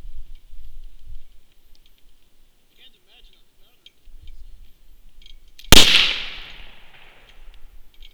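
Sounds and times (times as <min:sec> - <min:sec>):
flintlock rifle shot: 0:05.7 - 0:07.3.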